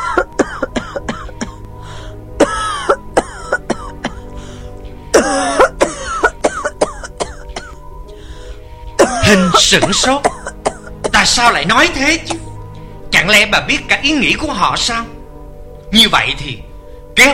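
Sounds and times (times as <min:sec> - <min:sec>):
older woman's violent coughing fit: 0:00.0 - 0:01.6, 0:02.4 - 0:04.3, 0:05.1 - 0:07.8, 0:09.0 - 0:11.3
speech: 0:09.3 - 0:10.3, 0:11.2 - 0:12.4, 0:13.3 - 0:15.1, 0:15.9 - 0:17.3.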